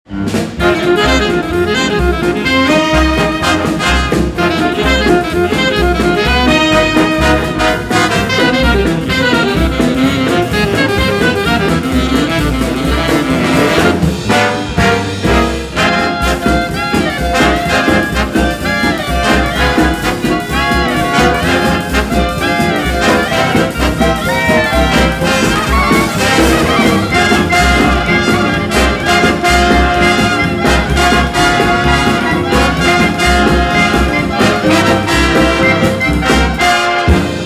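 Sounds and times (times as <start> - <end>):
big band music: 0.0 - 37.4.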